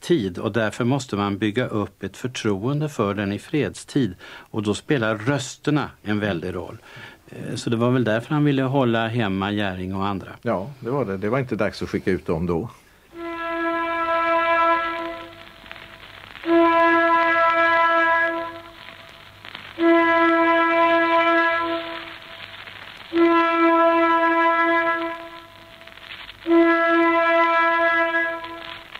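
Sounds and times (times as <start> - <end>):
speech: 0.0 - 12.8
air raid warning siren blasts: 13.2 - 28.9.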